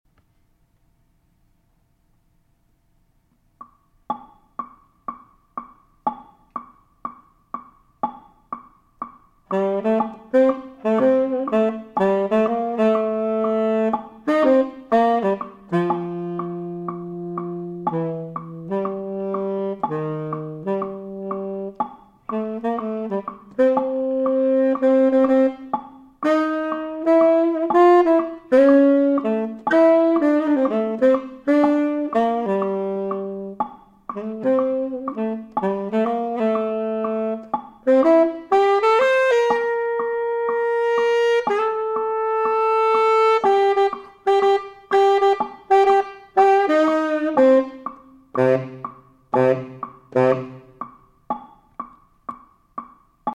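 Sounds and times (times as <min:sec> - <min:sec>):
jazz tenor swing: 0:09.5 - 0:50.9.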